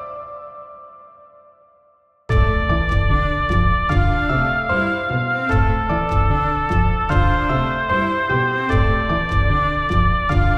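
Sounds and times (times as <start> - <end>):
short song: 2.3 - 10.5.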